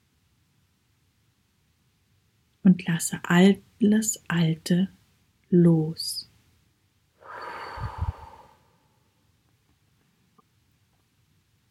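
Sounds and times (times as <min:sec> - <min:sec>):
speech: 0:02.7 - 0:06.3
deep inhale taken during a meditation: 0:07.2 - 0:09.1.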